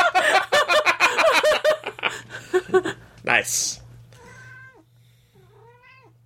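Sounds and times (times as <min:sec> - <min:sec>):
laughter: 0:00.0 - 0:03.0
steady low hum: 0:00.0 - 0:06.2
speech: 0:03.4 - 0:03.8
cat meowing: 0:04.2 - 0:04.8, 0:05.5 - 0:06.2.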